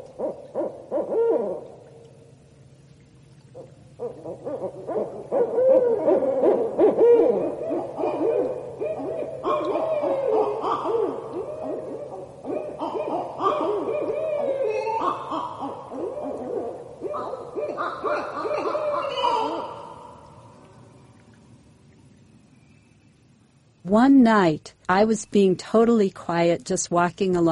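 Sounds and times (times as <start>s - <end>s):
pair of barred owls territorial duet of hoots and cackles: 0.1s - 1.9s, 3.6s - 20.6s
speech: 24.2s - 27.4s.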